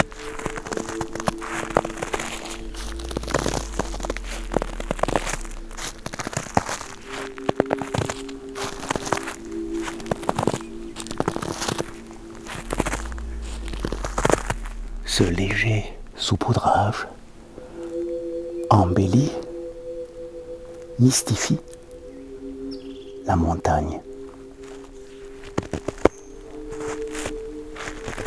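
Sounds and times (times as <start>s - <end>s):
footsteps crunching through dry dead leaves: 0.0s - 15.5s, 24.6s - 28.2s
low steady hum: 0.0s - 28.2s
speech: 15.2s - 17.2s, 18.7s - 19.4s, 21.0s - 21.8s, 23.3s - 24.1s.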